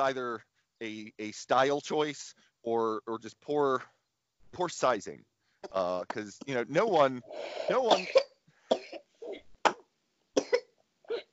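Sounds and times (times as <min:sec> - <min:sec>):
speech: 0:00.0 - 0:08.9
child coughing: 0:07.4 - 0:11.3.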